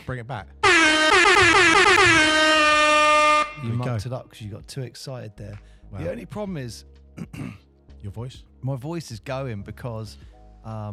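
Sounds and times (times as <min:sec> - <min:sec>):
speech: 0:00.1 - 0:02.4, 0:03.6 - 0:10.9
air horn blast sounded between games: 0:00.6 - 0:03.8.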